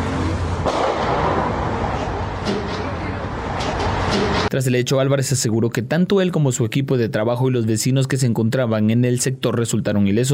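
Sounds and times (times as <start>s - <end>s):
steady street noise: 0.0s - 6.0s
sharp gunshot cracks fired nearby: 0.6s - 3.0s
speech: 4.5s - 10.3s.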